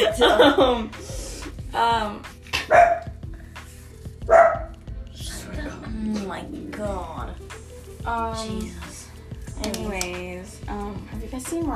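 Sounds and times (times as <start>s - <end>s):
laughter: 0.0s - 1.0s
speech: 0.0s - 1.1s, 1.7s - 2.4s, 8.0s - 8.9s, 9.6s - 11.7s
dog barking: 2.6s - 3.2s, 4.3s - 4.7s.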